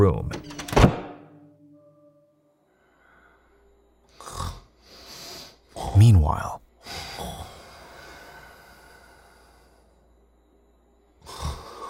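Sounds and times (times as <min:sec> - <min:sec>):
speech: 0:00.0 - 0:00.5, 0:06.0 - 0:06.6
man snoring while asleep: 0:04.1 - 0:05.1, 0:06.8 - 0:09.7, 0:11.2 - 0:11.8.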